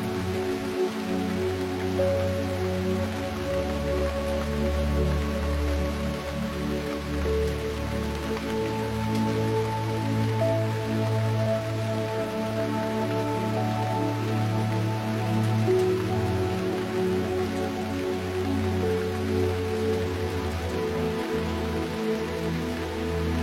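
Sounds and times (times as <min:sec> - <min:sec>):
rain falling: 0:00.0 - 0:23.4.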